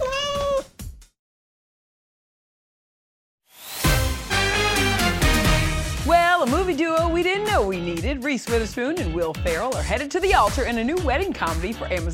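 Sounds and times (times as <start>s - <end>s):
kitten giving a short high-pitched meow: 0.0s - 0.7s
dense busy music: 3.8s - 12.1s
speech: 6.7s - 12.1s.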